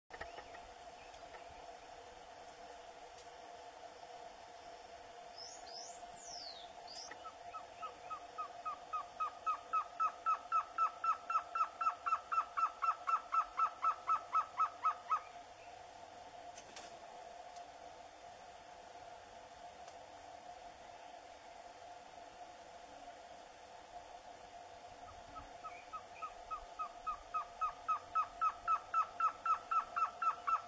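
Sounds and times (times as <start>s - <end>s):
surucua-de-barriga-vermelha trogon singing: 5.4s - 15.8s, 25.3s - 30.6s.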